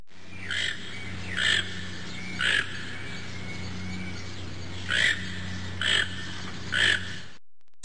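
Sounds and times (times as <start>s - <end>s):
toucan calling in a zoo: 0.2s - 7.4s.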